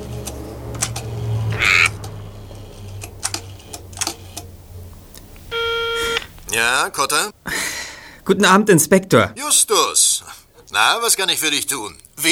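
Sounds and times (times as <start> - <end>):
telephone line ringing with steady electronic tone: 3.2 - 7.1
speech: 6.6 - 7.6, 8.3 - 10.1, 10.7 - 12.2.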